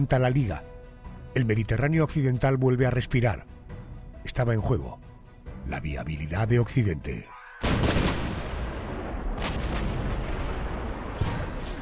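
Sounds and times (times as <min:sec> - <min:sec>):
speech: 0:00.0 - 0:00.7, 0:01.4 - 0:03.5, 0:04.2 - 0:05.0, 0:05.6 - 0:08.0
heavy cannon fire from galleasses in a naval battle: 0:07.6 - 0:11.7.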